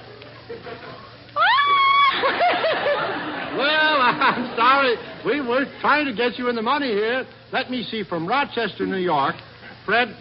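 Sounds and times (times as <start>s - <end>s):
laughter: 0.0s - 5.7s
people shrieking in imitation of an eagle scream: 1.4s - 2.6s
people squealing and yelping: 1.4s - 2.6s
speech: 4.1s - 10.1s.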